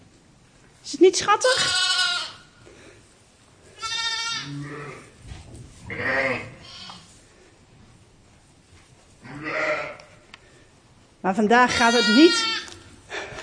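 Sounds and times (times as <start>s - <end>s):
quiet barn noise: 0.0s - 13.4s
speech: 0.8s - 1.9s, 11.3s - 12.6s
ewe bleating: 1.4s - 2.5s, 3.7s - 5.2s, 5.9s - 7.1s, 9.2s - 10.1s, 11.7s - 12.8s.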